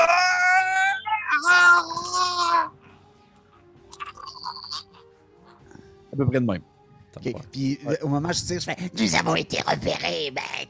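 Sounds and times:
person imitating a loud scream of pain: 0:00.0 - 0:02.7
speech: 0:06.2 - 0:10.6.

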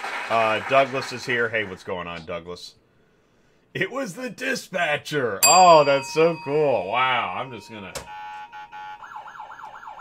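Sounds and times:
speech: 0:00.3 - 0:02.8, 0:03.7 - 0:08.1
siren sound effect wailing: 0:07.9 - 0:09.9.

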